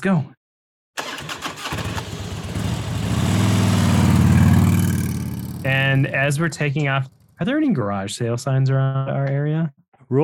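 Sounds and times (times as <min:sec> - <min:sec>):
speech: 0:00.0 - 0:00.3, 0:05.6 - 0:10.2
motorcycle engine starting and revving: 0:01.0 - 0:07.5.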